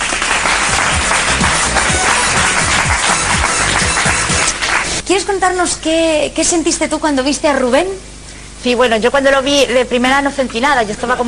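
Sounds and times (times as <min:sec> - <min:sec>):
studio audience applause: 0:00.0 - 0:05.0
speech: 0:05.2 - 0:11.2.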